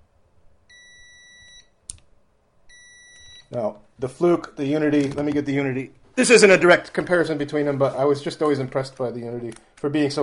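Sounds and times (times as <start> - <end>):
multimeter buzzer continuity beep: 0.7 - 1.8, 2.7 - 3.5
speech: 3.5 - 10.2.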